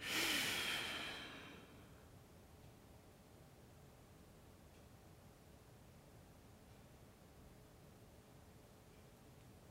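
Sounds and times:
strong forceful exhale during a restorative yoga breathing exercise: 0.0 - 1.9.

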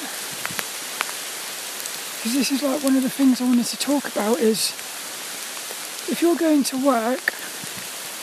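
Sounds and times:
steady rain falling outdoors: 0.0 - 8.2
speech: 2.2 - 5.0, 6.1 - 7.4.

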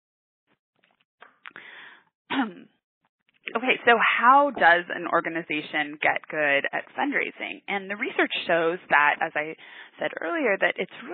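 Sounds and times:
person clearing throat in rough raspy bursts: 2.3 - 2.6
speech: 2.4 - 2.7, 3.5 - 11.1.

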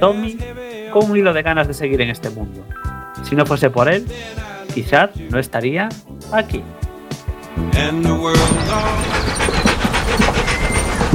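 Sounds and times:
speech: 0.0 - 6.8, 7.6 - 9.5
dog panting: 8.4 - 11.1.

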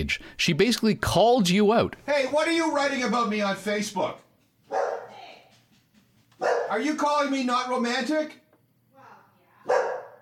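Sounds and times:
speech: 0.0 - 4.9, 6.4 - 8.4
dog yelping: 4.7 - 5.1, 6.4 - 6.8, 9.7 - 10.1
dog barking: 4.7 - 5.2, 6.4 - 6.8, 9.6 - 10.1.

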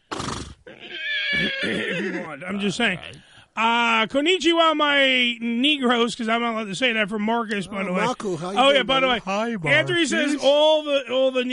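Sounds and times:
horse neighing: 0.1 - 2.4
speech: 0.8 - 11.5.

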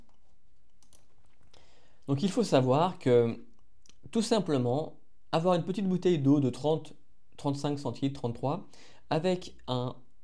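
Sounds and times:
soft clicks: 0.0 - 1.6
speech: 2.1 - 3.5, 4.1 - 10.0.

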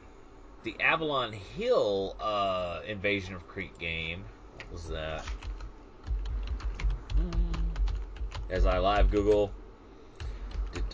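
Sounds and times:
speech: 0.6 - 5.5, 8.5 - 9.6
typing on a computer keyboard: 5.3 - 9.5, 10.2 - 10.9.

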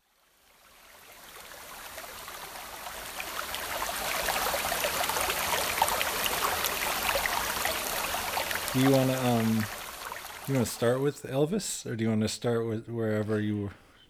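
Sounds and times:
small waterfall rushing: 0.0 - 11.1
speech: 8.8 - 9.8, 10.5 - 13.8.

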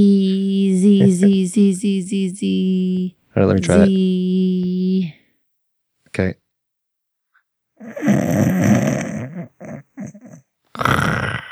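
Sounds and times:
speech: 0.0 - 5.2, 6.2 - 6.4
person imitating snoring: 7.8 - 11.5.

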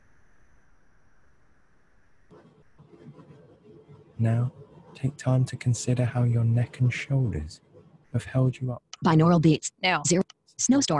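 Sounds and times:
low steady train rumble: 4.2 - 7.6
speech: 4.2 - 10.9.

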